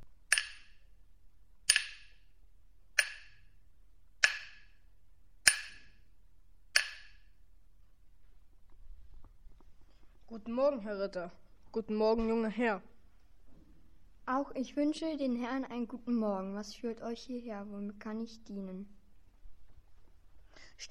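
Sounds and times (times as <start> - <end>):
blacksmith's hammer striking hot iron on an anvil: 0.3 - 0.8, 1.7 - 2.2, 3.0 - 3.5, 4.2 - 4.8, 5.4 - 6.0, 6.7 - 7.3
speech: 10.4 - 12.9, 14.3 - 19.0.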